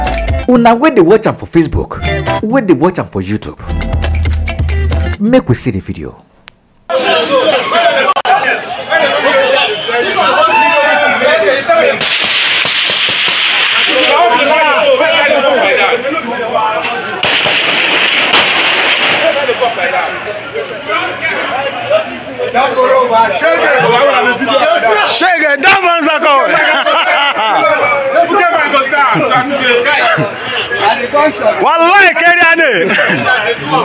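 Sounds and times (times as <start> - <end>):
loud dense crowd chatter and shouting: 0.0 - 5.2, 6.8 - 33.8
speech: 0.5 - 3.8, 5.2 - 6.3, 22.6 - 27.0, 29.2 - 33.8
gunshots: 12.0 - 14.4, 17.2 - 20.0
laughter: 25.8 - 31.4, 32.6 - 33.8.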